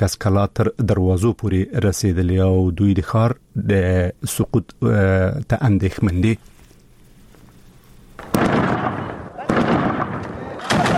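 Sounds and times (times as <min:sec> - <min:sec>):
speech: 0:00.0 - 0:06.5
gunfire in fighting between Afghan forces and Taliban in Qalat Zabul: 0:08.2 - 0:10.9.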